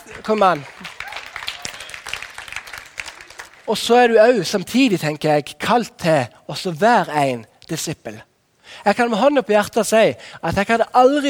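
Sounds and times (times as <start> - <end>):
crowd applauding: 0.0 - 3.8
speech: 0.1 - 0.8, 3.7 - 11.2.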